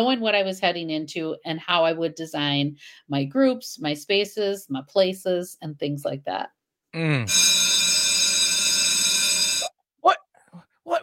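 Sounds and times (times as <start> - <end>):
speech: 0.0 - 7.6
brief vocal sound: 7.0 - 7.3
loud electric bell ringing: 7.3 - 9.7.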